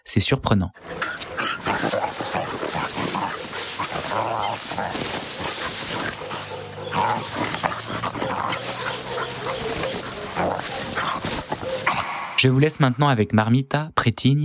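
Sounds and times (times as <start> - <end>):
speech: 0.1 - 1.8, 4.2 - 14.4
busy noisy outdoor background: 0.6 - 13.8
Brazilian street dogs barking and whimpering: 0.8 - 12.1.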